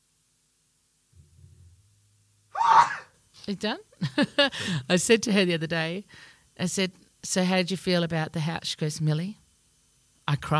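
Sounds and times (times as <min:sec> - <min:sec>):
sneeze: 0:02.6 - 0:03.2
speech: 0:03.5 - 0:09.4, 0:10.3 - 0:10.5.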